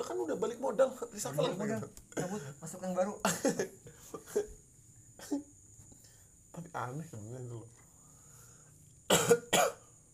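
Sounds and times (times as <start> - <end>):
speech: 0.0 - 4.6, 5.2 - 5.5, 6.6 - 7.8, 9.1 - 9.8
person coughing: 9.1 - 9.9.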